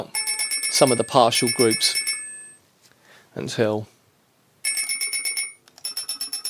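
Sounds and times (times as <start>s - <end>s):
electric bell with pivoting electromagnet hammer ringing: 0.0s - 2.6s, 4.7s - 6.4s
speech: 0.7s - 2.1s, 3.4s - 3.9s.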